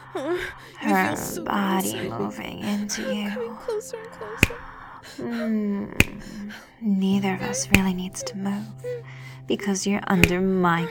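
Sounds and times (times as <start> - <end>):
soft low voice humming or murmuring: 0.0 - 9.2
speech: 0.1 - 10.8
finger snap: 4.4 - 4.9, 6.0 - 6.6, 7.4 - 8.4, 10.1 - 10.8.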